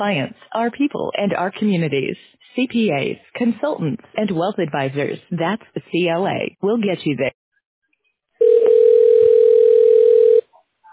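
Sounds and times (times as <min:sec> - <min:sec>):
speech: 0:00.0 - 0:07.4
telephone ringing tone while a call is put through to reception: 0:08.4 - 0:10.5.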